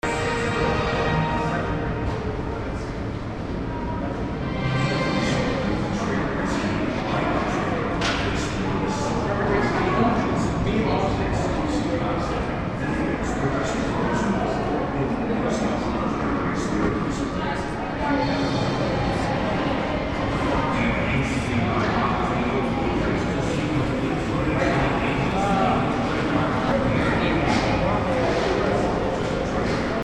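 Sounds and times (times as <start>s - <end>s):
theater lobby ambience: 0.0s - 30.0s.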